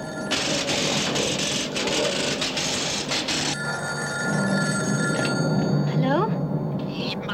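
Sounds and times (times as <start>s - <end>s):
telephone bell ringing: 0.0s - 7.2s.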